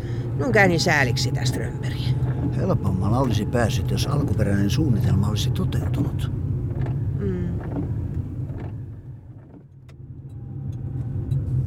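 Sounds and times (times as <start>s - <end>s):
car driving to a petrol station: 0.0s - 11.6s
speech: 0.4s - 6.4s
faint higher rattles: 1.2s - 10.0s.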